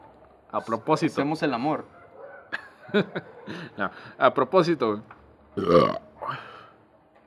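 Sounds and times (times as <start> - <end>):
speech: 0.5 - 2.0, 2.9 - 6.5
laughter: 2.5 - 3.8
person burping: 5.6 - 6.6.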